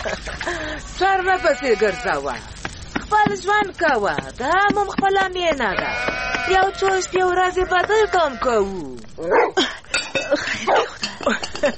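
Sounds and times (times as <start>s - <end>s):
speech: 1.0s - 2.5s, 3.1s - 11.7s
dog barking near a tent at a mountain foothill camp: 9.3s - 9.6s, 10.6s - 11.0s.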